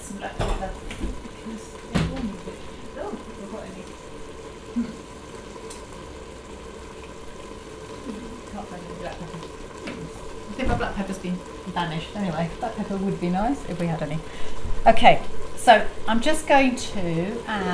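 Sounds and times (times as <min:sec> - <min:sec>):
food sizzling in a pan while being stirred: 0:00.0 - 0:17.7
speech: 0:00.1 - 0:00.8, 0:11.0 - 0:17.7.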